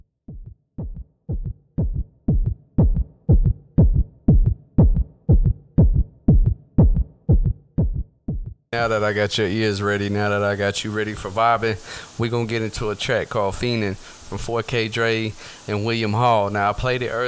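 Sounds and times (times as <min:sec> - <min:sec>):
loud heartbeat thumping: 0:00.0 - 0:08.7
speech: 0:08.7 - 0:17.2.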